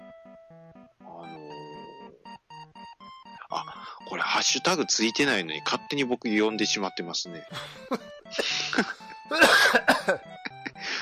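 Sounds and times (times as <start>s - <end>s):
speech: 3.5s - 10.4s
person choking coughs with voiced sputtering: 8.4s - 10.2s.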